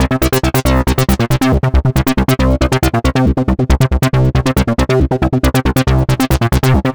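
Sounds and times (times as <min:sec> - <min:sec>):
acid techno music: 0:00.0 - 0:06.9.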